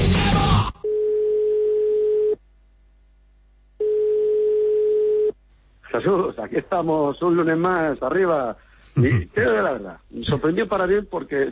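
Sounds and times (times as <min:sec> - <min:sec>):
telephone tone of a failed call: 0:00.8 - 0:02.4, 0:03.8 - 0:05.4
speech: 0:06.0 - 0:11.5.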